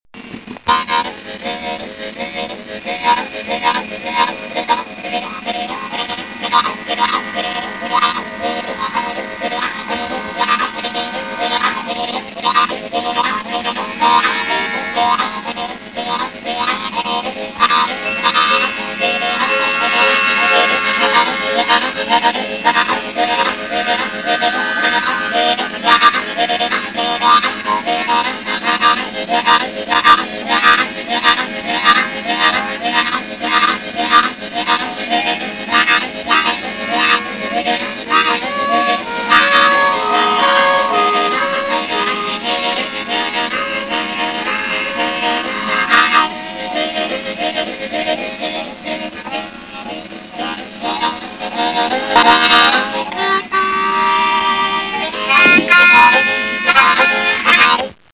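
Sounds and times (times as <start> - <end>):
train: 0.2 - 58.0
blow harp playing: 2.7 - 28.2, 34.9 - 47.8, 52.0 - 57.8.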